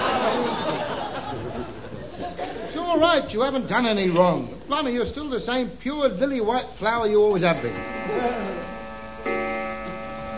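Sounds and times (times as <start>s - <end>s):
laughter: 0.0s - 3.0s
speech: 3.0s - 8.7s
clock chiming with sustained ringing tones: 7.6s - 10.3s.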